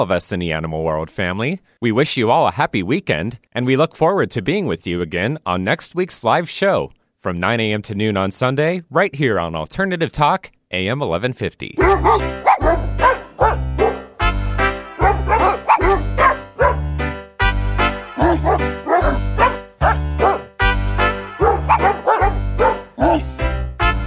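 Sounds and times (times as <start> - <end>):
speech: 0.0 - 12.9
dog barks pitched to notes playing a Christmas tune: 11.8 - 24.0
steady thumping bass accompaniment: 11.8 - 24.0.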